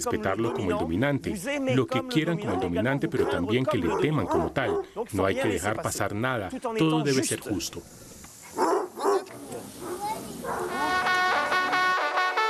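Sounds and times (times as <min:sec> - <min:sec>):
speech: 0:00.0 - 0:08.2
pack of hunting hounds of the hunt at Cheverny France barking and baying: 0:00.2 - 0:00.9, 0:02.3 - 0:05.0, 0:08.5 - 0:12.4.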